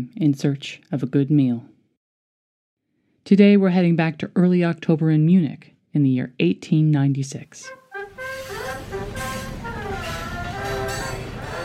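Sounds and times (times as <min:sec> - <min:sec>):
speech: 0:00.0 - 0:01.7, 0:03.2 - 0:07.8
steam train whistle arriving at the Centralbahnhof in Munich: 0:07.6 - 0:11.6.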